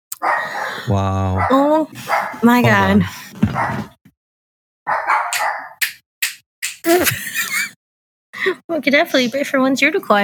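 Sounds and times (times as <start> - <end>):
dogs barking: 0.1 - 4.0, 4.9 - 5.8
speech: 0.4 - 3.9, 6.8 - 7.2, 8.4 - 10.2
laughter: 0.8 - 1.4, 6.9 - 7.8.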